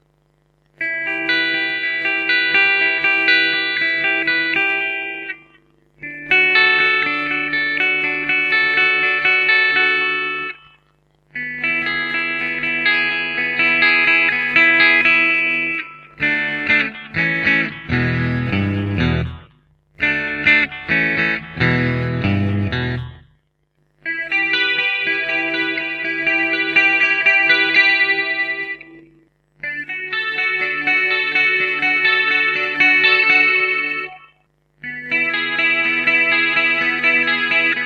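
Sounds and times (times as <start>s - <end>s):
electric guitar with vintage toned alnico V single coil pickup: 0.6s - 23.4s, 24.0s - 37.8s.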